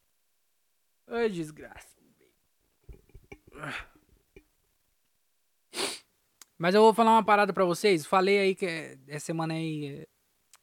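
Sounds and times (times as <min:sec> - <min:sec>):
speech: 0:01.1 - 0:02.0, 0:03.6 - 0:03.9, 0:06.6 - 0:10.1
person sneezing: 0:03.5 - 0:04.0, 0:05.7 - 0:06.1.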